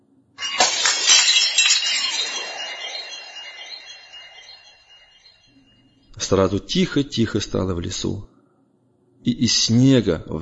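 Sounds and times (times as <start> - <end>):
fragile glass object shattering: 0.4 - 5.5
high ringing tones and tinkling glass fragments: 0.4 - 5.5
speech: 6.2 - 8.3, 9.2 - 10.4.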